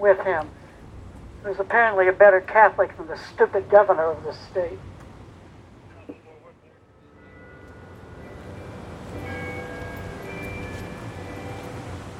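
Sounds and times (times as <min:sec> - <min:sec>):
speech: 0:00.0 - 0:00.6, 0:01.4 - 0:04.9
steady noise: 0:00.0 - 0:12.1
bells striking the hour of 6 p.m.: 0:07.0 - 0:12.1.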